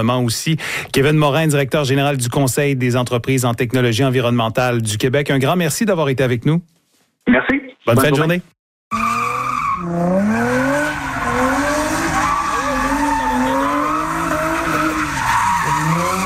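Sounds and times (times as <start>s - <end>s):
speech: 0.0s - 9.1s, 9.8s - 10.4s
car tires squealing at illegal street-racing gathering in Trois-Rivières industrial district: 8.9s - 16.2s
car engine roar at illegal street-racing gathering: 9.0s - 16.2s.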